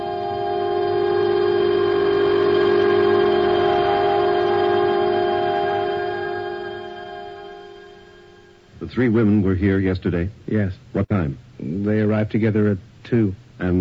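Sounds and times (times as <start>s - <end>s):
subway train horn blaring in a chord-like tone: 0.0s - 8.6s
speech: 9.0s - 13.7s.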